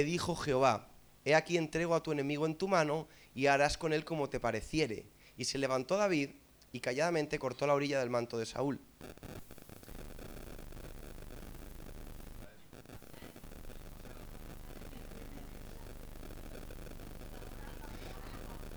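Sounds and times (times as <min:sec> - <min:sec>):
speech: 0:00.0 - 0:09.6
static and buzzing interference from a wired microphone: 0:00.0 - 0:18.7
crackling bursts from a wired microphone: 0:08.6 - 0:18.7.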